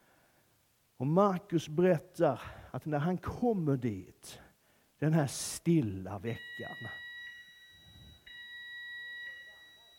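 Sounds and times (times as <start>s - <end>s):
speech: 1.0s - 4.4s, 5.0s - 7.0s
high-pitched fire alarm ringing: 6.2s - 9.9s.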